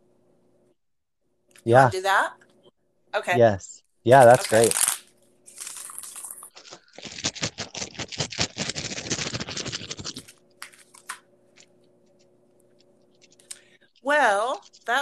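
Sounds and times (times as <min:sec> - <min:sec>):
faint low hum: 0:00.0 - 0:15.0
speech: 0:01.6 - 0:02.4, 0:03.1 - 0:04.8
tarot cards being shuffled: 0:04.1 - 0:12.2.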